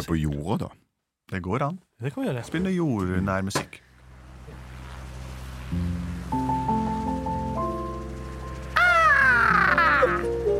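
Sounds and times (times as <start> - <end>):
speech: 0.0 - 3.9
soft steady tonal hum: 3.9 - 10.5
several birds giving harsh cawing calls: 8.6 - 10.5.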